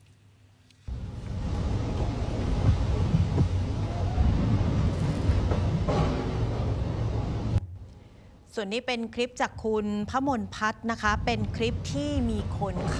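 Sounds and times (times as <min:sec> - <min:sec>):
heavy rain in a storm: 0:00.9 - 0:07.6
gusty wind in a storm: 0:00.9 - 0:07.8, 0:11.0 - 0:12.9
speech: 0:08.6 - 0:12.9.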